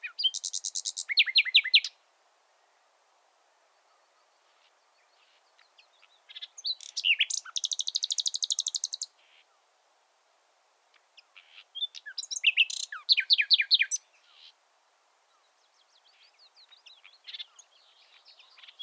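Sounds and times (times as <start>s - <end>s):
common nightingale Luscinia megarhynchos song: 0.0s - 2.9s, 3.6s - 9.7s, 10.9s - 18.8s.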